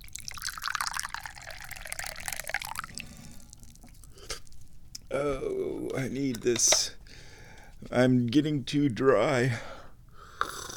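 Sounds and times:
tea pouring into a cup: 0.0 - 4.2
faint drips: 0.0 - 5.1
quiet handling: 4.7 - 8.6
speech: 5.1 - 7.0, 7.8 - 9.7.

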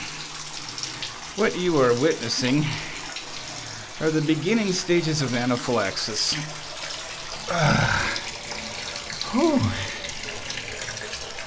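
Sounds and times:
cold tap water running into a bathtub over feet: 0.0 - 11.4
speech: 1.4 - 2.9, 4.0 - 6.6, 7.5 - 8.0, 9.3 - 9.8
person making short wavering vocal sounds: 7.5 - 8.3, 9.2 - 10.0.

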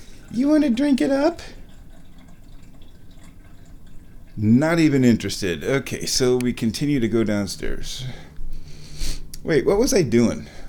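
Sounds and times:
water splashing into a cottage cheese container used as a cat's water bowl: 0.0 - 5.9
speech: 0.3 - 1.6, 4.4 - 8.3, 9.4 - 10.6.

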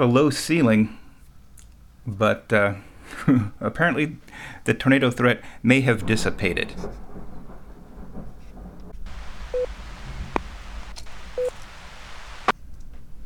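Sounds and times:
speech: 0.0 - 1.0, 2.1 - 7.0
low continuous rumble of thunder: 5.4 - 12.5
steady rain hissing: 5.4 - 12.6
brief electronic beeps: 9.5 - 9.7, 11.4 - 11.6.

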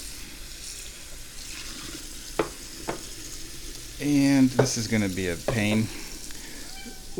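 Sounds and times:
water running from a faucet into a sink: 0.5 - 7.1
soapy dishes being rinsed under running water: 1.5 - 6.5
speech: 4.0 - 6.0
dishware clinking together: 4.6 - 5.9.

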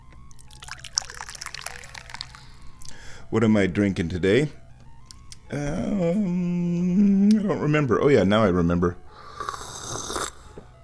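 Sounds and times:
tea being poured into a cup: 0.3 - 3.0
speech: 3.3 - 4.6, 5.5 - 9.0.

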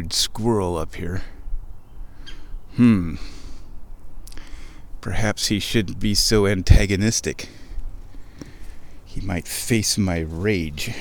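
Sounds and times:
speech: 0.1 - 1.4, 2.8 - 3.4, 5.0 - 7.6, 9.2 - 10.9
faint bird chirps: 1.3 - 4.5.

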